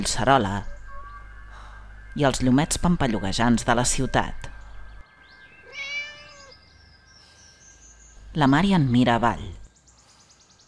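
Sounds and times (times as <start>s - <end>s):
speech: 0.0s - 0.7s, 2.2s - 4.5s, 8.4s - 9.6s
cat meowing: 5.6s - 6.6s.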